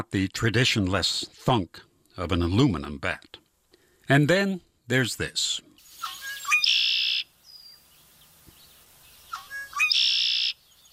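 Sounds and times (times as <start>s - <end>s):
speech: 0.0s - 3.4s, 4.1s - 6.2s
red-winged blackbird calling from its perch in the reeds: 5.8s - 10.9s.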